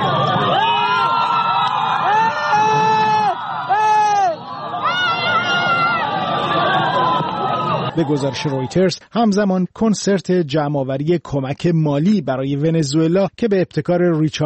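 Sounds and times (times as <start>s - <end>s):
dense crowd of supporters cheering and shouting: 0.0s - 9.0s
speech: 8.0s - 14.4s.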